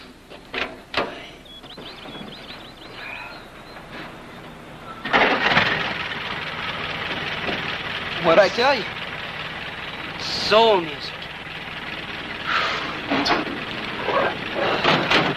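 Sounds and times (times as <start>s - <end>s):
original car engine starting and idling: 0.2s - 15.3s
sharp ignition clicks of an original car: 5.0s - 15.3s
speech: 8.3s - 9.0s, 10.5s - 11.2s.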